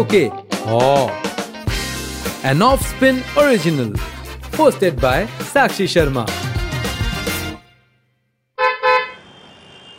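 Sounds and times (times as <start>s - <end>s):
speech: 0.0s - 1.3s, 2.4s - 6.5s
car horn honks from a driver trying to overtake: 8.6s - 9.9s
faint road noise: 8.6s - 9.9s.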